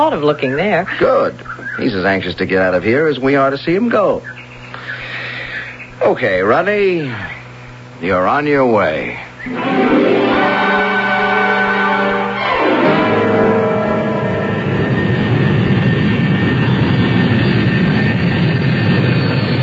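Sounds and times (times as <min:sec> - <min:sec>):
speech: 0:00.0 - 0:05.0, 0:06.0 - 0:07.4, 0:08.0 - 0:09.9
airplane taking off: 0:09.5 - 0:19.6.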